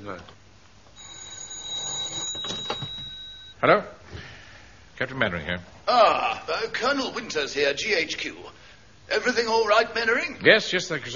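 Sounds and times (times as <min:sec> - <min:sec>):
speech: 0:00.0 - 0:00.4, 0:03.6 - 0:04.3, 0:05.0 - 0:11.1
telephone bell ringing: 0:00.9 - 0:03.6.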